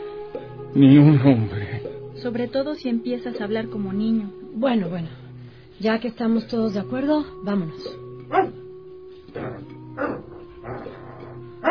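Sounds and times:
speech: 0.7s - 1.6s, 2.2s - 5.2s, 5.8s - 8.6s
dog barking while threatening a hen: 8.3s - 8.6s, 9.4s - 11.0s.

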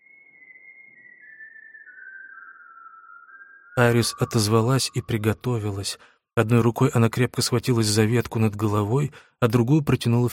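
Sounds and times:
person whistling a sad pigeon-like song: 0.0s - 5.2s
speech: 3.8s - 10.3s.

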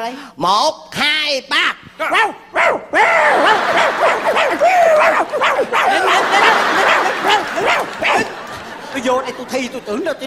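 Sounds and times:
speech: 0.0s - 10.2s
dogs barking and yipping in a dog pen: 2.2s - 8.7s
laughter: 3.0s - 10.2s.

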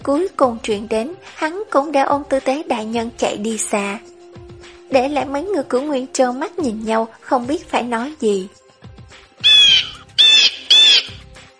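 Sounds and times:
speech: 0.0s - 4.1s, 4.9s - 8.6s
angry little bird squawking as it flies up: 9.4s - 11.2s.

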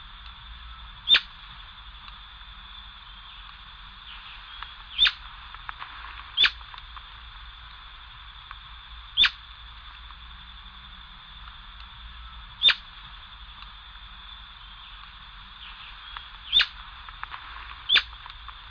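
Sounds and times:
Atlantic royal flycatcher Onychorhynchus swainsoni sharp calls: 0.7s - 1.4s, 4.0s - 5.3s, 6.3s - 6.6s, 9.1s - 9.5s, 12.1s - 13.0s, 14.4s - 16.9s, 17.7s - 18.2s.

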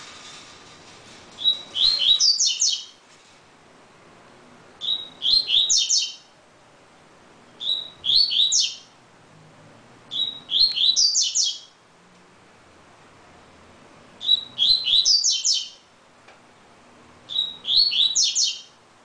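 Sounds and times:
double-collared seedeater whistled twittering song: 1.4s - 3.0s, 4.8s - 6.3s, 7.6s - 8.9s, 10.1s - 11.8s, 14.2s - 15.8s, 17.3s - 18.8s.

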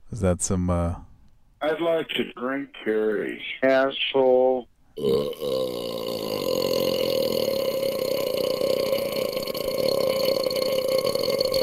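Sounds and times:
speech: 0.1s - 6.3s
long deep throaty burp: 5.0s - 11.6s.

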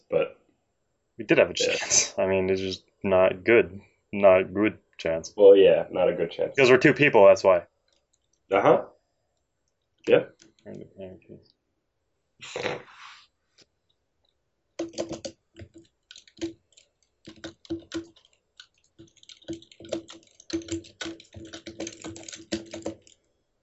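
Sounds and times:
speech: 1.2s - 7.7s, 8.5s - 9.0s, 10.0s - 11.5s, 12.4s - 13.1s
keyboard typing by someone writing: 14.8s - 23.2s.

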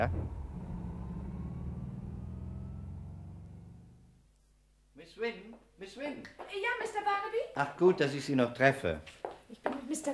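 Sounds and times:
speech: 0.0s - 0.2s, 5.1s - 10.1s
car engine rumble while driving to a warehouse: 0.0s - 4.4s.

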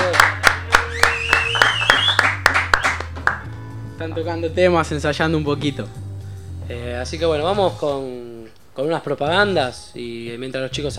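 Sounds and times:
people clapping in a studio: 0.0s - 3.6s
speech: 4.0s - 6.0s, 6.7s - 10.9s.

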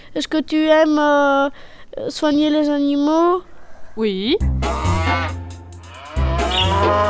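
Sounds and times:
speech: 0.1s - 5.4s, 6.8s - 7.0s
cows mooing on a farm: 4.8s - 7.0s.

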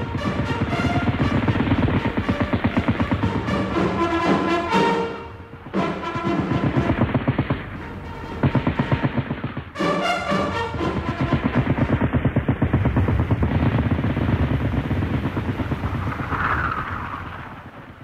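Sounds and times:
machine-gun fire in a First World War battle: 0.0s - 17.4s.

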